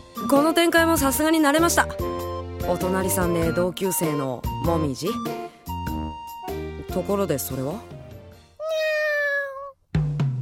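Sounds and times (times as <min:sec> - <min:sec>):
speech: 0:00.3 - 0:05.4, 0:06.9 - 0:07.9
pet cat giving a long drawn-out meow: 0:08.6 - 0:09.8.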